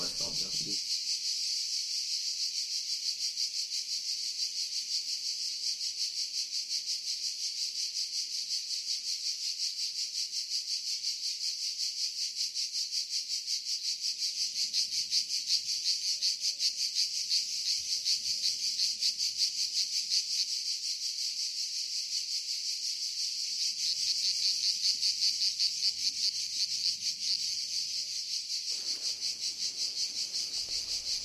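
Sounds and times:
dense chorus of crickets chirping: 0.0s - 31.2s
faint low rustle: 28.8s - 31.2s.

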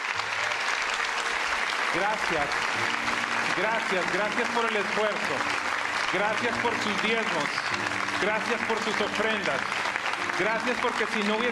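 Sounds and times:
congregation applauding: 0.0s - 11.4s
speech: 2.0s - 9.8s, 10.4s - 11.4s.

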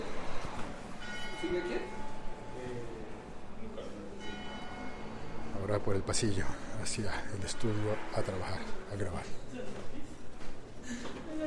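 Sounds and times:
murmur with indistinct voices: 0.0s - 11.4s
church bells ringing: 0.8s - 8.8s
speech: 1.4s - 2.0s, 5.7s - 10.0s.

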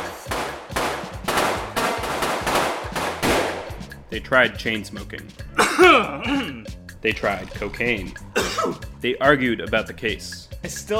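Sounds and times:
guns firing at a shooting range: 0.0s - 3.9s
speech: 4.1s - 10.9s.

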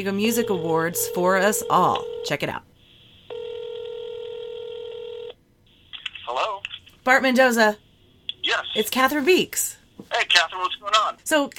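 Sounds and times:
speech: 0.0s - 2.7s, 7.1s - 7.8s, 8.4s - 11.5s
telephone ringing with a steady electronic tone: 0.3s - 2.4s, 3.3s - 5.4s.

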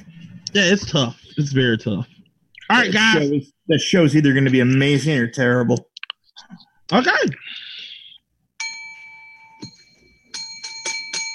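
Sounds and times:
speech: 0.5s - 2.1s, 2.7s - 7.7s
hand bell struck hard: 8.6s - 11.3s.

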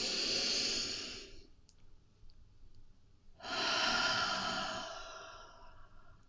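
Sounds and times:
deep breath drawn in and let out: 0.0s - 1.5s, 3.4s - 6.2s.

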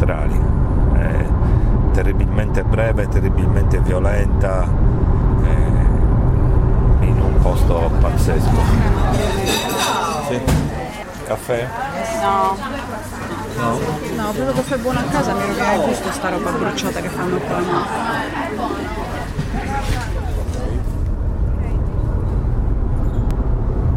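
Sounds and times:
low rumble: 0.0s - 9.7s, 19.4s - 23.9s
crowd voices at an outdoor ancestral rite in Sedilo: 6.8s - 22.2s.

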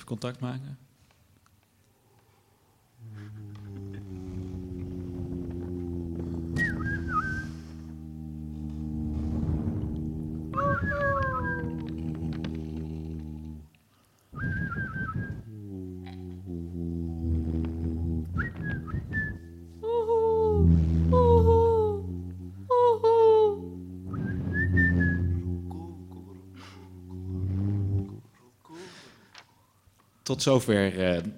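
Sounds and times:
speech: 0.1s - 0.9s, 30.3s - 31.3s
steady loud low drone: 3.0s - 13.8s, 14.4s - 28.3s
whistle-like calls in a forest: 6.4s - 7.9s, 10.5s - 11.9s, 14.3s - 15.5s, 18.4s - 19.5s, 24.1s - 25.5s.

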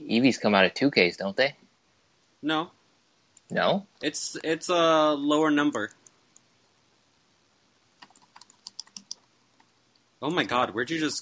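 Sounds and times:
speech: 0.1s - 1.6s, 2.4s - 2.8s, 3.5s - 6.0s, 10.2s - 11.1s
tapping on a computer keyboard: 8.0s - 9.2s.

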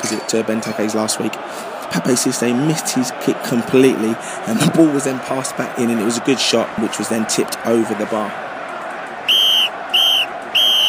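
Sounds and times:
crowd noise in a stadium: 0.0s - 10.8s
speech: 0.1s - 8.5s
referee's final whistle blasts: 9.3s - 10.8s.

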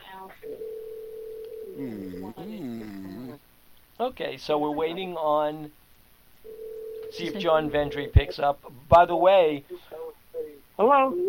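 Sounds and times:
ringback tone on a telephone line while a call waits to be answered: 0.5s - 1.7s, 6.5s - 7.2s
speech: 1.8s - 3.4s, 4.0s - 5.8s, 7.1s - 10.0s, 10.8s - 11.2s.

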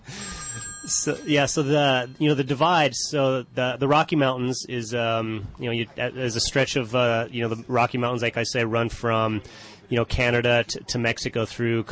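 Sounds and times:
telephone ringing with electronic tone: 0.0s - 3.3s
speech: 0.9s - 11.8s.

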